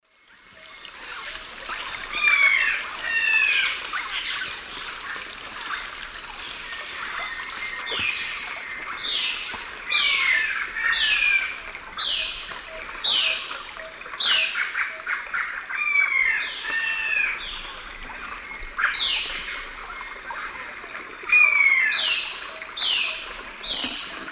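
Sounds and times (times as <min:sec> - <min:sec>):
Myrmeciza melanoceps calls in South American Eastern Lowlands: 0:01.0 - 0:24.3.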